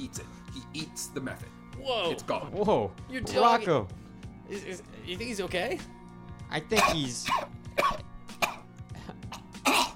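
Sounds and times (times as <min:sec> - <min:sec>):
speech: 0:00.0 - 0:08.0
person mimicking a dog coughing after inhaling smoke: 0:06.8 - 0:09.9.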